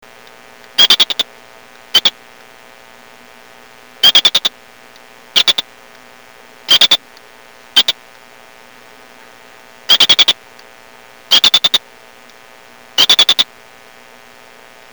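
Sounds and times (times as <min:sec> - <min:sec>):
female P vittatus chanting calls: 0:00.8 - 0:01.2, 0:04.0 - 0:04.5, 0:05.4 - 0:05.7, 0:06.7 - 0:07.0, 0:09.9 - 0:10.4, 0:11.3 - 0:11.8, 0:13.0 - 0:13.5.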